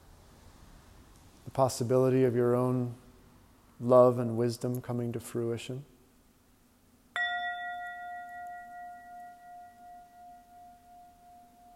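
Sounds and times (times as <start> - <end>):
speech: 1.5 - 3.0, 3.8 - 5.9
single bell struck and ringing out: 7.2 - 11.7.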